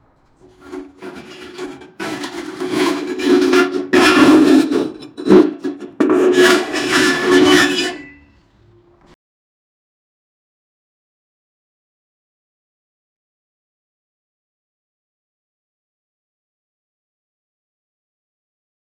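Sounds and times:
large metal object scraping: 0.0s - 8.4s.

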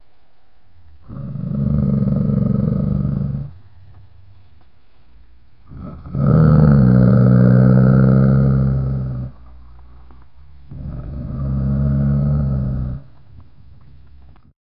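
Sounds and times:
dog growling low: 1.0s - 3.8s, 5.6s - 9.5s, 10.7s - 13.2s.

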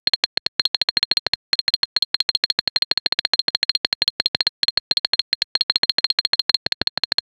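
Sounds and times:
8 bit game typing sound: 0.1s - 7.3s.

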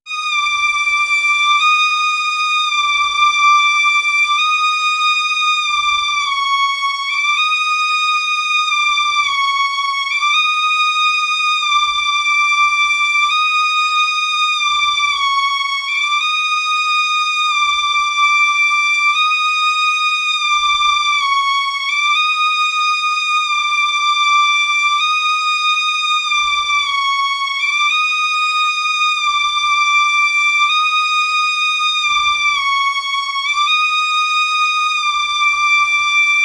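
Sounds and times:
high repetitive violin: 0.1s - 36.4s.

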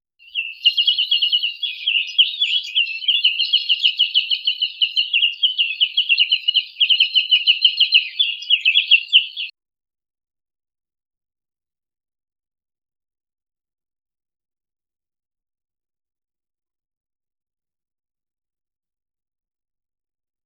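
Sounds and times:
bird chirping: 0.2s - 9.5s.

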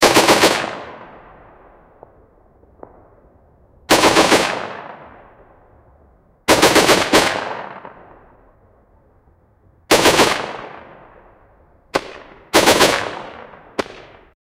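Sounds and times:
World War 75mm artillery gun firing: 0.0s - 1.2s, 3.9s - 5.3s, 6.5s - 8.2s, 9.9s - 11.2s, 11.9s - 14.3s.

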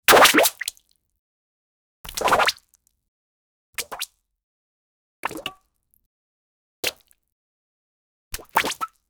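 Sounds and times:
pudding splishing and sploshing: 0.1s - 0.6s.

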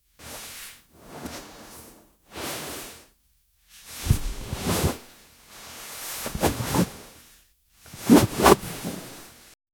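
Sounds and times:
imposing cloak rustling: 4.0s - 5.1s, 6.1s - 7.1s, 7.9s - 9.4s.

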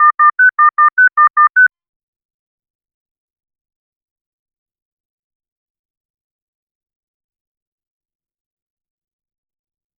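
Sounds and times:
alert sound: 0.0s - 1.7s.

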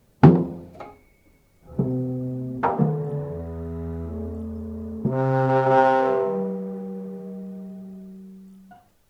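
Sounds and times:
slow clumsy out-of-tune tuba music: 1.6s - 8.8s.

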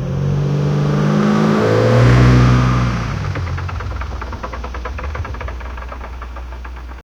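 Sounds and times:
car drifting on wooden surface: 0.2s - 7.0s.

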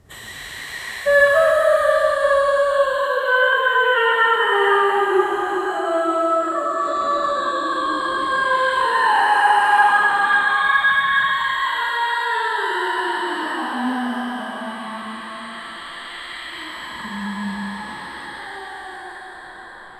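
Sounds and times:
terrifying female ghost voice: 0.0s - 19.9s.

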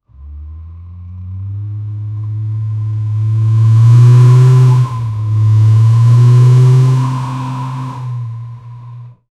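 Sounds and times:
car engine revving aggressively: 0.0s - 9.2s.

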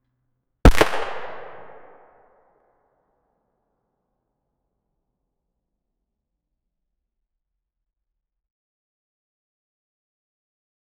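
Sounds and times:
loud gunshot reverberating: 0.7s - 2.0s.

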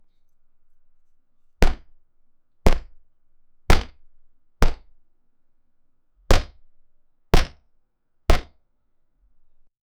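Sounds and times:
boxing punches: 1.6s - 2.0s, 2.7s - 3.0s, 3.7s - 4.0s, 4.6s - 4.9s, 6.3s - 6.6s, 7.4s - 7.6s, 8.3s - 8.6s.

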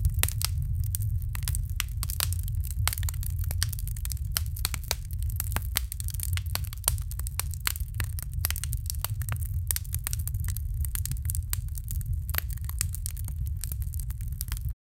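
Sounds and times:
fire crackling: 0.0s - 14.8s.

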